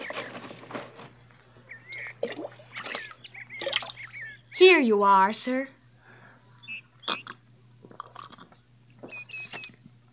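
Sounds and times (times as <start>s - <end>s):
faint steady low hum: 0.0s - 10.1s
water splashing and sloshing as a pitcher is lowered into a well: 1.8s - 4.4s
speech: 4.6s - 5.8s
person drinking water from a pitcher with slurps and gulps: 7.1s - 9.1s.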